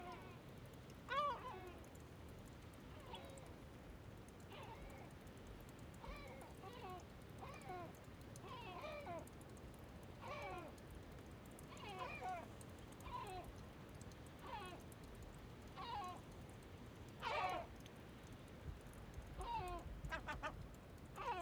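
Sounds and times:
small stream trickling in Bøur, Faroe Islands: 0:00.0 - 0:21.4
calm gulls calling in flight over Bøur, Faroe Islands: 0:19.4 - 0:20.6.

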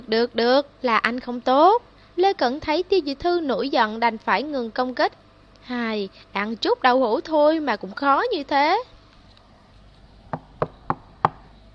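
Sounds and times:
speech: 0:00.1 - 0:08.9
knocking on a room door: 0:10.3 - 0:11.5.

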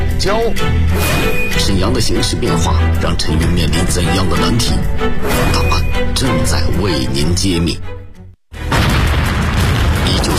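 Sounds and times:
speech: 0:00.2 - 0:08.0
explosion sound effect of a blast: 0:08.6 - 0:10.3.

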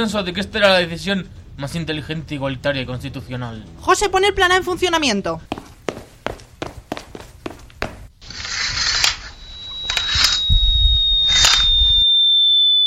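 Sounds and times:
speech: 0:00.0 - 0:05.7
falling-bomb whistle sound effect: 0:09.3 - 0:12.8.

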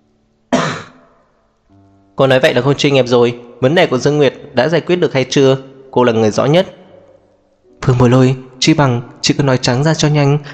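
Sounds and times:
woman clearing her throat: 0:00.5 - 0:01.0
speech: 0:02.2 - 0:06.8, 0:07.8 - 0:10.5.

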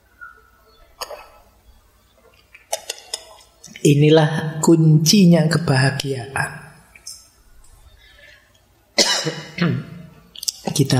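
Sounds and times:
faint room noise: 0:00.0 - 0:10.9
speech: 0:03.8 - 0:06.6, 0:10.8 - 0:10.9
harsh coughs from the audience at an evening religious study session: 0:09.0 - 0:09.6.

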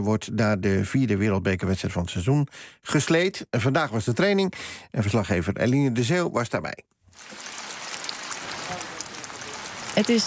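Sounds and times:
speech: 0:00.0 - 0:07.6, 0:10.0 - 0:10.2
rain falling at a sled track in Winterberg, Germany: 0:07.1 - 0:10.2.

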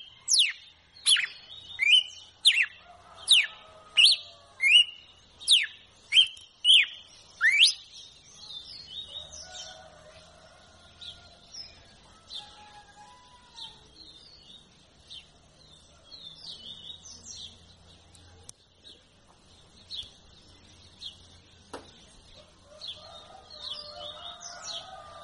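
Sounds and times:
female red-cowled cardinal song of downslurred whistles: 0:00.0 - 0:07.9.

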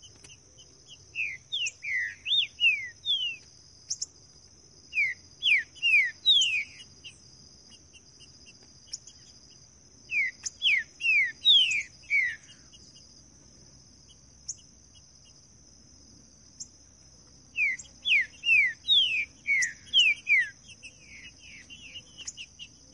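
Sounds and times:
high insect buzz: 0:00.0 - 0:22.8
green-winged saltator singing in the bush: 0:00.9 - 0:04.1, 0:04.9 - 0:07.2, 0:10.1 - 0:12.8, 0:17.5 - 0:22.8.

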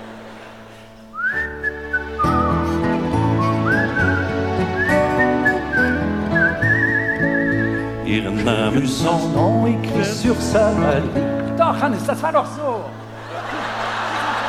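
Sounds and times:
laughter: 0:00.0 - 0:08.0, 0:13.0 - 0:14.4
person whistling a tune: 0:01.1 - 0:08.0
speech: 0:08.7 - 0:13.0.

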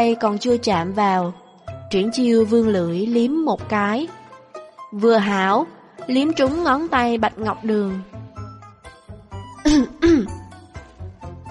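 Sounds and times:
speech: 0:00.0 - 0:04.2, 0:04.9 - 0:08.2
man's dry throat-clearing cough: 0:09.6 - 0:10.4.

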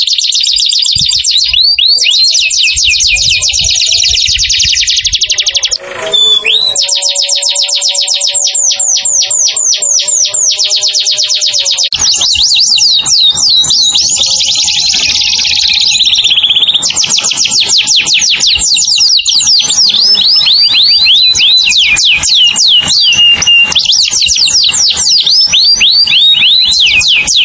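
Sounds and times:
canary singing as a bird-trapping lure call: 0:00.0 - 0:27.4.

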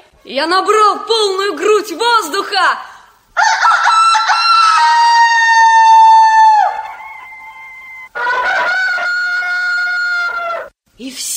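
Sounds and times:
speech: 0:00.2 - 0:02.9
roosters crowing: 0:03.3 - 0:10.8.

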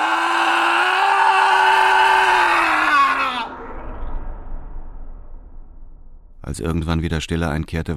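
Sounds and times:
person screaming in a crime radio drama: 0:00.0 - 0:03.6
low rumbling noise: 0:00.9 - 0:07.9
speech: 0:06.5 - 0:07.9.

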